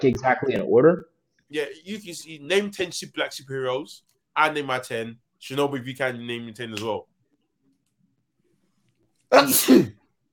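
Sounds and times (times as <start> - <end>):
speech: 0.0 - 7.1, 9.3 - 10.0
person sneezing: 9.3 - 10.0.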